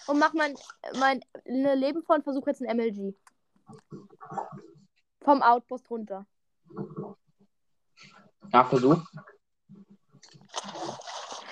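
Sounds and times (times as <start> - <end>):
speech: 0.0 - 7.2, 8.0 - 9.3
video game character splashing into water: 10.2 - 11.4
water rushing and churning: 10.4 - 11.4.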